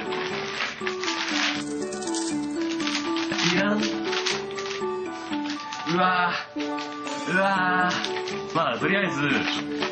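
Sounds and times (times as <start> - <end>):
chocolate candy balls rattling in a box: 0.0 - 9.9
faint melody: 0.0 - 9.9
speech: 3.4 - 4.0, 5.9 - 6.7, 7.3 - 9.9.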